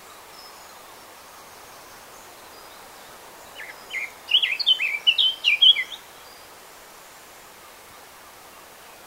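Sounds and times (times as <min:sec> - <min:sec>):
faint background hiss: 0:00.0 - 0:09.0
Eurasian blackcap Sylvia atricapilla singing: 0:03.6 - 0:06.0.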